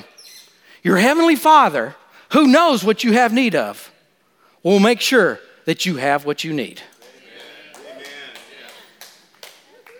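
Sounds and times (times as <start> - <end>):
speech: 0.8 - 3.9, 4.6 - 6.9
light golf clap applause: 6.9 - 9.9.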